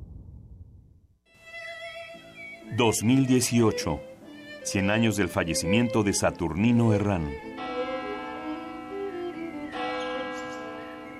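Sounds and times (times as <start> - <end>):
speech: 2.7 - 7.5
cathedral church bells ringing: 6.1 - 11.1.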